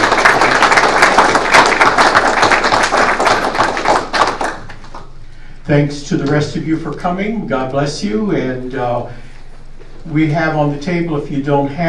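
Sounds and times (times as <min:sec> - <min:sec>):
audience applause: 0:00.0 - 0:05.0
speech: 0:05.7 - 0:09.3, 0:10.0 - 0:11.8.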